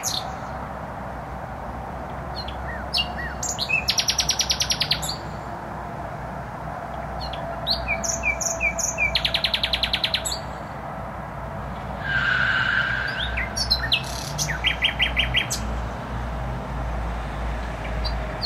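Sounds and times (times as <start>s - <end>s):
constant low rumble of motorway traffic: 0.0s - 18.4s
nightingale singing in bushes: 2.3s - 5.4s, 7.2s - 10.8s, 11.8s - 15.7s.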